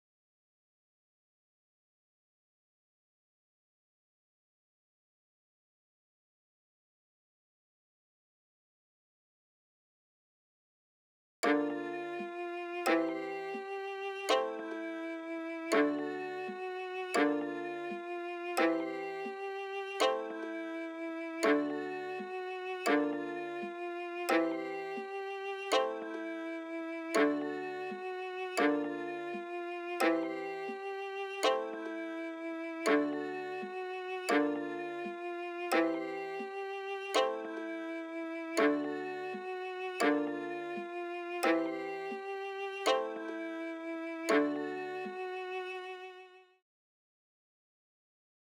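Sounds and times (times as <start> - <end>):
dirty melodic violin melody in D minor: 11.4 - 46.4.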